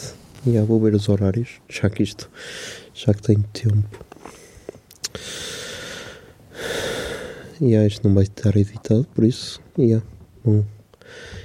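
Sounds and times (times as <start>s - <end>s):
speech: 0.0s - 4.4s, 5.1s - 5.6s, 7.6s - 11.4s
heavy breathing against the microphone: 2.3s - 3.0s, 4.2s - 7.6s, 11.0s - 11.4s.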